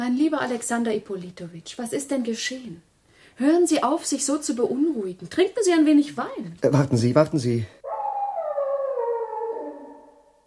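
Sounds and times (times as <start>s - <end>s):
speech: 0.0s - 7.8s
dog howling: 7.8s - 10.4s.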